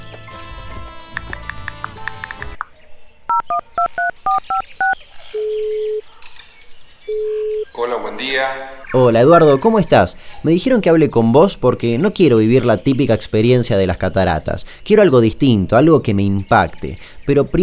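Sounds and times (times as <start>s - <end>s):
steady telephone ringing tones on the line: 3.3s - 6.0s, 7.1s - 7.7s
telephone keypad dialing tones: 3.3s - 6.0s
speech: 8.2s - 17.6s.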